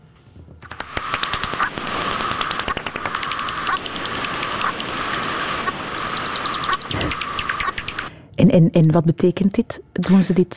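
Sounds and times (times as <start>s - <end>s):
slowed-down bat echolocation hunting calls in flight: 0.6s - 8.1s
speech: 8.4s - 10.5s.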